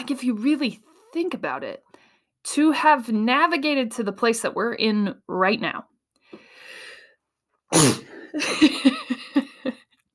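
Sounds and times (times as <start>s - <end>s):
speech: 0.0s - 6.4s, 7.7s - 9.0s
soft intake of breath: 6.2s - 7.2s
person sneezing: 7.7s - 8.4s.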